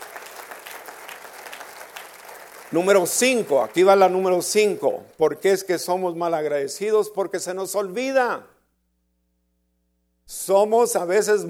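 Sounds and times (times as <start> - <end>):
church congregation applauding during a service: 0.0 - 4.9
speech: 2.7 - 8.5, 10.5 - 11.4.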